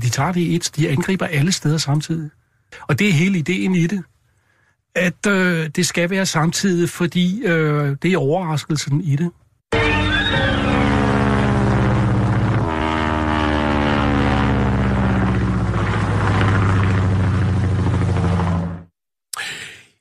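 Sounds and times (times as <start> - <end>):
speech: 0.1 - 4.1, 5.0 - 10.6
Tachikawa Ki-36 propeller aircraft droning: 9.7 - 18.9.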